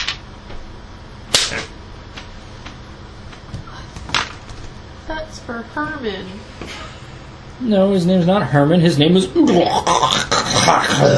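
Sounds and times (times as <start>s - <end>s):
speech: 5.1s - 7.0s, 7.6s - 11.1s
person making a raspy phlegmy throat-hawking noise: 9.5s - 11.1s.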